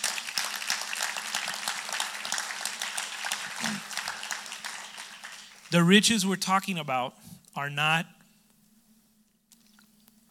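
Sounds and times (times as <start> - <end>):
crowd applauding: 0.0 - 6.2
speech: 5.7 - 8.2.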